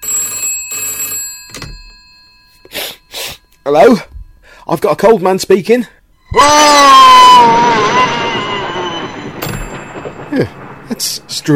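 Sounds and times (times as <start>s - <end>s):
old-style telephone bell ringing: 0.0s - 4.1s
speech: 3.7s - 4.1s, 4.7s - 7.9s, 10.4s - 11.5s
person screaming down a phone line: 6.3s - 8.0s.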